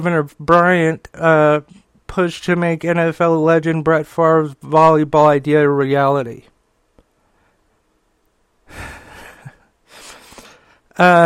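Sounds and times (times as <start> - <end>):
speech: 0.0 - 6.5, 11.0 - 11.2
faint click: 6.9 - 7.1
person taking breathy inhalations: 8.7 - 10.9.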